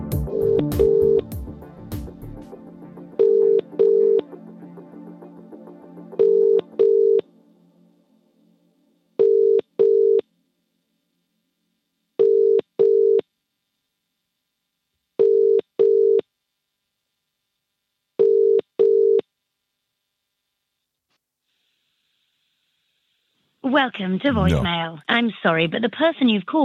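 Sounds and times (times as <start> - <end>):
double-pulse telephone ringback tones on a call: 0.3 - 1.3, 3.2 - 4.3, 6.2 - 7.3, 9.2 - 10.2, 12.2 - 13.2, 15.2 - 16.2, 18.2 - 19.2
busy cluttered noise: 2.8 - 26.6
speech: 23.7 - 26.6.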